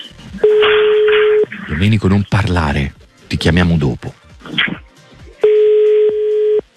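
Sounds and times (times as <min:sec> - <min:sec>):
noisy telephone line sounds: 0:00.5 - 0:01.5, 0:05.4 - 0:06.7
speech: 0:01.8 - 0:04.2.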